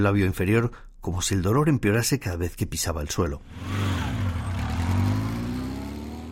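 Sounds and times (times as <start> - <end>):
speech: 0.0 - 4.2
small motorcycle engine starting and revving: 3.4 - 6.3.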